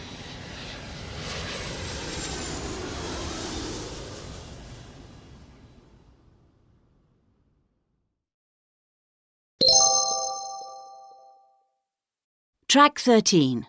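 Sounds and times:
jet plane roaring overhead: 0.0s - 6.5s
bright two-tone chime: 9.6s - 11.7s
speech: 12.7s - 13.6s.

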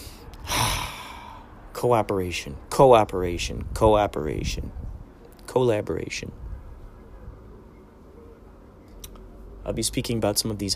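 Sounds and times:
person taking deep voiced breaths: 0.0s - 1.6s
speech: 1.8s - 4.9s, 5.5s - 6.4s, 9.6s - 10.7s.

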